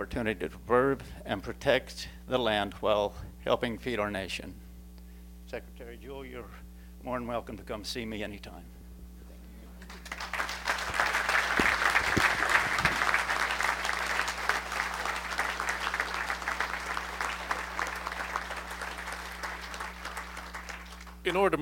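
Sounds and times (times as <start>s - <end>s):
speech: 0.0s - 4.6s, 5.5s - 8.8s, 21.2s - 21.6s
audience applause after a speech at a public meeting: 9.8s - 21.3s.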